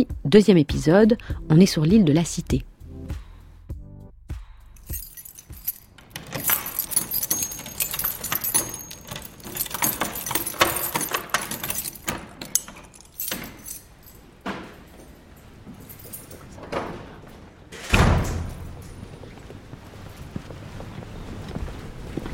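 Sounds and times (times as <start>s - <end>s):
speech: 0.0s - 2.7s
bunch of keys jangling and clinking: 4.8s - 16.7s.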